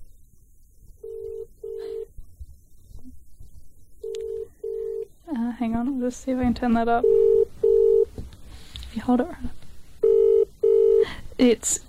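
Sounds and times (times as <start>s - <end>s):
telephone ringing tone of a dialed call: 1.0s - 2.1s, 4.0s - 5.1s, 7.0s - 8.1s, 10.0s - 11.1s
speech: 5.6s - 7.3s, 9.0s - 9.6s, 11.4s - 11.8s.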